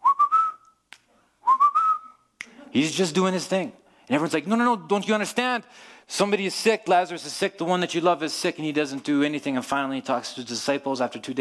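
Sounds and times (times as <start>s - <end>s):
person whistling a casual tune: 0.0s - 0.8s, 1.4s - 2.3s
speech: 2.8s - 11.3s.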